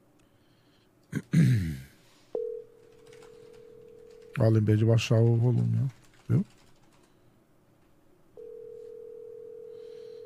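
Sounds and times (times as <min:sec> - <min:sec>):
telephone dialing tone of an outgoing call: 0:02.4 - 0:04.4, 0:08.4 - 0:10.2
speech: 0:04.4 - 0:06.6.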